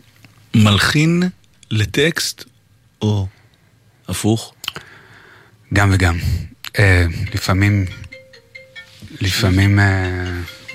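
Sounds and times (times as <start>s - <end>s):
speech: 0.7s - 3.3s, 4.1s - 4.5s, 5.7s - 8.0s, 9.1s - 10.7s
electronic phone ringtone: 7.1s - 10.7s.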